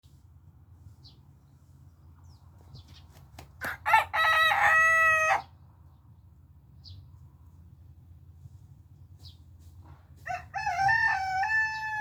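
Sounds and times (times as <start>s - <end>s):
rooster crowing: 3.6s - 5.5s, 10.3s - 11.9s.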